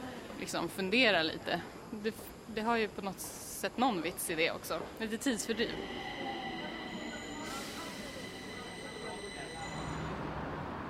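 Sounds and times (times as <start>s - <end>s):
speech: 0.4s - 6.3s
Stockholm tunnelbana subway train rumbling through underground station at Skanstull: 4.3s - 10.8s
high metallic subway train wheel squeal: 5.5s - 10.3s.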